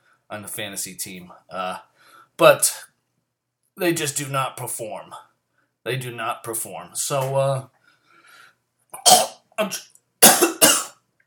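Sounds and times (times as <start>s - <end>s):
speech: 0.3s - 2.9s, 3.8s - 7.8s, 8.9s - 9.9s
person coughing after inhaling something: 9.0s - 9.4s, 10.2s - 11.0s.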